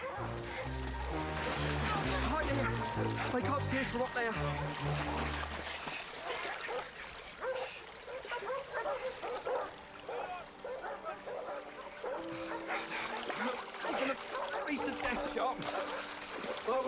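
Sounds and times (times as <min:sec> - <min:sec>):
dogs barking: 0:00.0 - 0:01.2, 0:01.9 - 0:03.9, 0:06.2 - 0:16.8
speech: 0:02.6 - 0:05.8, 0:15.4 - 0:16.8
dogs whimpering and yelping: 0:08.3 - 0:16.6.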